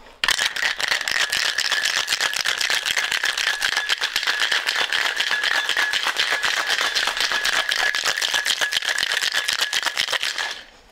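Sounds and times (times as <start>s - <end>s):
freezer ice cubes rattling in a cocktail shaker: 0.2s - 10.8s.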